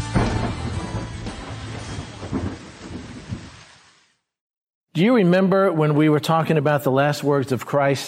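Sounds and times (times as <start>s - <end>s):
deep thunder rumbling: 0.1s - 4.1s
steady downpour of heavy rain: 0.2s - 4.2s
speech: 5.0s - 8.0s.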